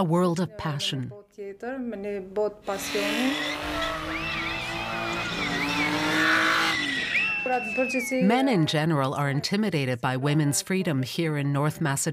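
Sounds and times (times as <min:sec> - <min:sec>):
speech: 0:00.0 - 0:05.6, 0:07.4 - 0:12.1
drifting car engine drone: 0:02.7 - 0:07.8
tires squealing as a car drifts at a drifting competition in North Macedonia: 0:02.7 - 0:07.9.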